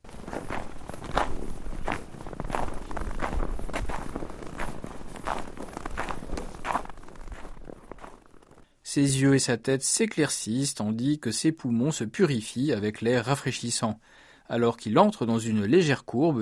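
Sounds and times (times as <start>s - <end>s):
footsteps crunching through snow in a dense evergreen forest: 0.0s - 8.7s
speech: 9.0s - 16.4s.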